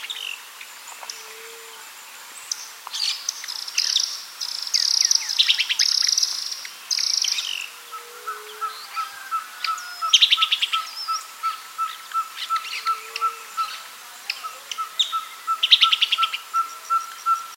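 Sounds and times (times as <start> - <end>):
tyrant flycatcher trilled calls: 2.5 - 17.5.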